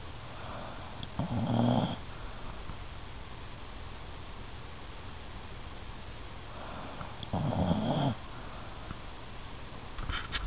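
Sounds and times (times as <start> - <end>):
dog snoring: 0.4 - 2.1, 6.5 - 8.3.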